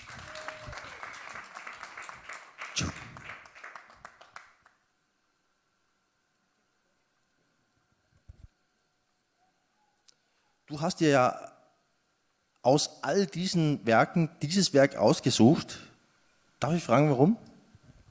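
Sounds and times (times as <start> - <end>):
applause from a small audience: 0.0 - 4.7
speech: 2.8 - 3.0, 10.7 - 11.5, 12.6 - 15.9, 16.6 - 17.5.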